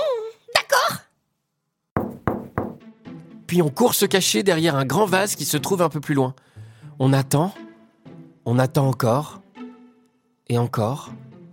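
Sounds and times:
firm knocking on a wooden door: 0:02.0 - 0:02.9
speech: 0:03.5 - 0:07.6, 0:08.5 - 0:09.4, 0:10.5 - 0:11.2.

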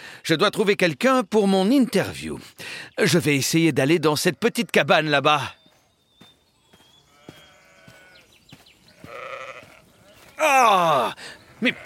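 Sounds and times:
speech: 0:00.3 - 0:05.6, 0:10.4 - 0:11.8
sheep bleating: 0:07.0 - 0:08.3, 0:08.9 - 0:11.0, 0:11.6 - 0:11.8.

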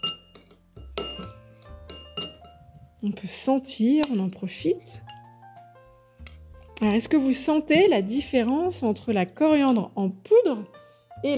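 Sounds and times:
utensil clinking against a glass dish while mixing ingredients: 0:00.0 - 0:02.7, 0:05.0 - 0:05.3, 0:09.6 - 0:10.1
speech: 0:03.0 - 0:05.1, 0:06.8 - 0:11.3.

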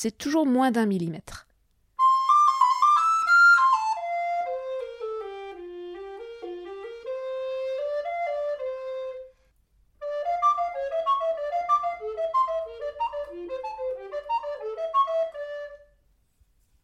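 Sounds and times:
speech: 0:00.0 - 0:01.5
flute played with headjoint cork pushed in: 0:02.0 - 0:16.0.

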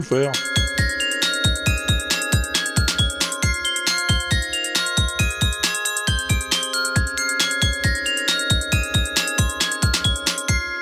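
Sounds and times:
speech: 0:00.0 - 0:00.6
film theme melody on glockenspiel: 0:00.0 - 0:10.7
low thumping beat: 0:00.4 - 0:10.5.

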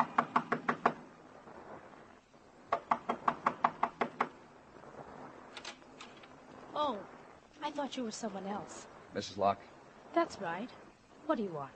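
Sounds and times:
knocking on a door: 0:00.0 - 0:01.0, 0:02.7 - 0:04.3
speech: 0:07.7 - 0:11.7.

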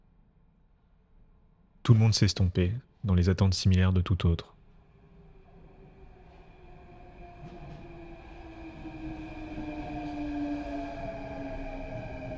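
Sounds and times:
speech: 0:01.8 - 0:04.6
subway train rumbling into the station: 0:04.8 - 0:12.3.

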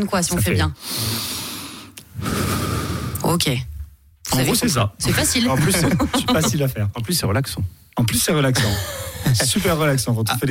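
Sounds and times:
speech: 0:00.0 - 0:01.4, 0:03.3 - 0:03.7, 0:04.3 - 0:10.4
person demonstrating an exercise breathing technique: 0:00.8 - 0:03.2
laughter: 0:05.1 - 0:06.7.

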